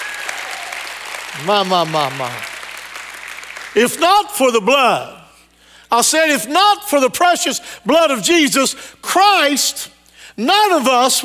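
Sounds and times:
church audience applauding: 0:00.0 - 0:03.8
speech: 0:01.4 - 0:02.5, 0:03.7 - 0:05.2, 0:05.9 - 0:11.2.

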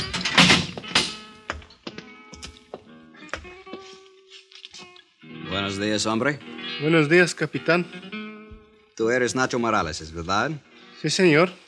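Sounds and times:
steel grill door pulled open clanking and rattling: 0:00.0 - 0:01.2
speech: 0:05.6 - 0:08.2, 0:09.0 - 0:11.6.

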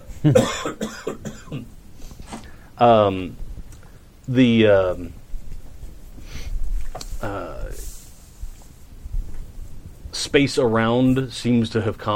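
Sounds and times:
speech: 0:00.2 - 0:01.7, 0:02.8 - 0:03.4, 0:04.3 - 0:05.2, 0:07.2 - 0:07.8, 0:10.3 - 0:12.1
harsh coughing: 0:00.3 - 0:01.7
loud drawn-out throat clearing: 0:00.3 - 0:01.7.

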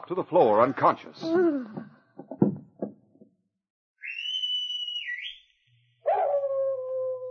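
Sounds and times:
speech: 0:00.1 - 0:02.0
animal yelping: 0:06.0 - 0:06.9
animal howling: 0:06.0 - 0:07.2.

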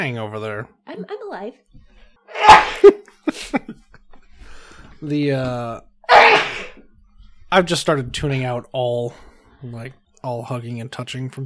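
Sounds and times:
speech: 0:00.0 - 0:03.8, 0:05.0 - 0:06.5, 0:07.5 - 0:11.4
person sneezing: 0:02.4 - 0:02.9, 0:06.1 - 0:06.8.

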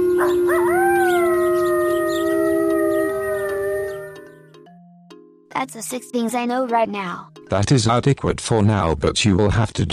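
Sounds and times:
chorus of wolves howling: 0:00.0 - 0:04.5
speech: 0:05.6 - 0:09.9.

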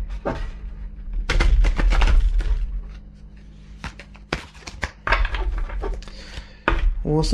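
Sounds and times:
playing cards shuffled against the microphone: 0:01.6 - 0:06.6
speech: 0:07.1 - 0:07.3.

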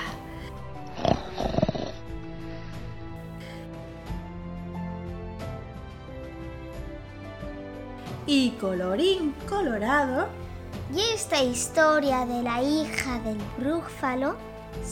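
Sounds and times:
monster-like growling snores: 0:00.8 - 0:03.2
speech: 0:08.3 - 0:14.9.

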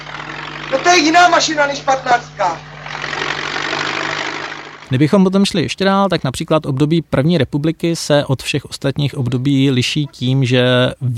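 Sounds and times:
crawler tractor engine idling: 0:00.0 - 0:04.9
speech: 0:00.7 - 0:02.7, 0:04.9 - 0:11.1.

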